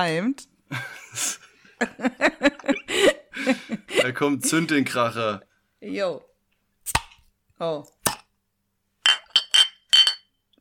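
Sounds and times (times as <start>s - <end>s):
speech: 0.0s - 6.3s, 7.6s - 8.0s
beer glasses clinking together in a toast: 9.0s - 10.6s.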